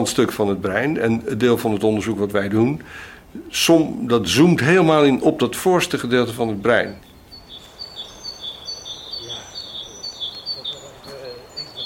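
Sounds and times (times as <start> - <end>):
speech: 0.0 - 7.1
many small birds chirping and trilling outdoors: 0.0 - 11.8
faint low voices or murmur: 9.2 - 11.8.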